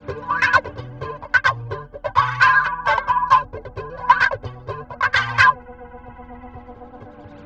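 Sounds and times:
weird wah guitar: 0.0 - 5.8.

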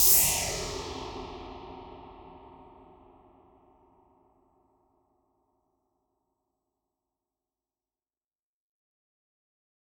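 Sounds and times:
noise reverb decays: 0.0 - 3.5.

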